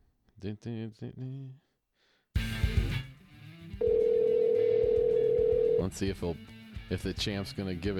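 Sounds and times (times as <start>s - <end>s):
speech: 0.4s - 1.6s, 5.8s - 7.9s
outgoing telephone call dialing and ringing: 3.8s - 5.8s.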